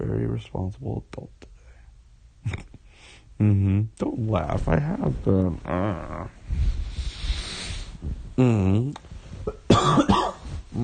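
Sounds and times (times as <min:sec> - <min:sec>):
speech: 0:00.4 - 0:01.5, 0:02.4 - 0:06.8, 0:08.0 - 0:10.8
person groaning: 0:05.7 - 0:06.4, 0:08.4 - 0:09.0
person coughing harshly: 0:09.4 - 0:10.8.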